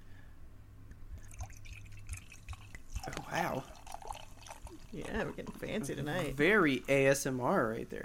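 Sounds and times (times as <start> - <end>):
low steady hum: 0.0 - 8.0
sparkling pina colada mocktail poured into a glass: 1.3 - 6.4
speech: 3.1 - 3.8, 4.9 - 8.0.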